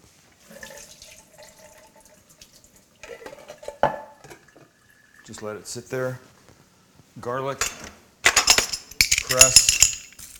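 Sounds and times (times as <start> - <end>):
liquid drained from a can of corn trickling into a kitchen sink: 0.4 - 5.6
speech: 5.3 - 6.3, 7.2 - 7.8, 9.3 - 9.7.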